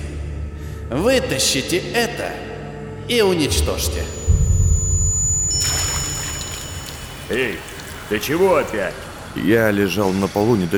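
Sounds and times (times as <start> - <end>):
speech: 0.9 - 2.5, 3.1 - 4.2, 7.3 - 10.7
low rumbling background: 3.4 - 8.8
oily water splashed onto a man lying on the floor: 5.1 - 8.8.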